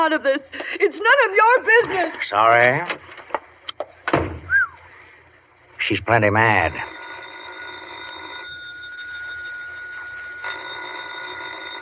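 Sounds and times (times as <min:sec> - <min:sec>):
speech: 0:00.0 - 0:03.1, 0:05.8 - 0:07.0
old-fashioned telephone bell ringing: 0:06.4 - 0:11.8.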